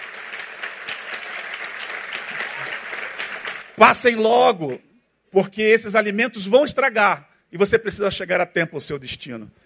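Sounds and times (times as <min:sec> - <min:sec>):
audience applauding: 0:00.0 - 0:04.8
speech: 0:03.8 - 0:09.6.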